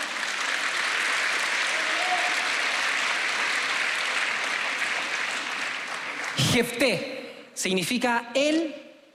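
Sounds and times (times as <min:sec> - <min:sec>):
large group applauding: 0:00.0 - 0:06.8
speech: 0:06.6 - 0:08.8.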